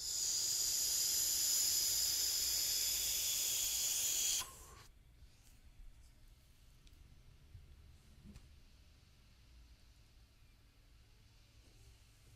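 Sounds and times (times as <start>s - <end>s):
airy draw through a multi-tube vape device with high whistling tones: 0.0s - 4.9s.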